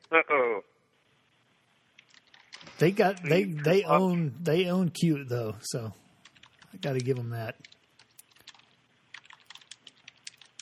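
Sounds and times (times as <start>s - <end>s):
people typing on computer keyboards: 1.9s - 4.8s, 6.2s - 10.6s
speech: 2.8s - 6.0s, 6.8s - 7.8s.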